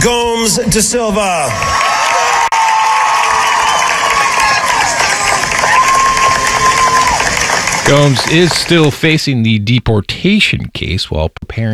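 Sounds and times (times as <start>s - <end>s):
speech: 0.0s - 1.9s, 7.9s - 11.7s
large crowd cheering and shouting at a graduation ceremony: 0.2s - 8.9s
dense applause: 1.3s - 9.2s.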